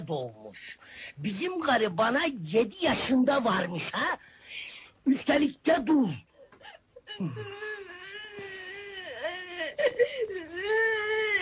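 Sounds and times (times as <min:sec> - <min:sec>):
speech: 0:00.1 - 0:07.6
person sobbing: 0:06.3 - 0:11.4
person whimpering and crying: 0:06.6 - 0:11.4.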